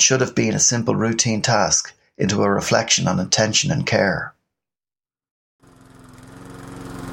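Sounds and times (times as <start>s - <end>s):
speech: 0.0s - 4.4s
lawn mower engine running: 5.6s - 7.1s.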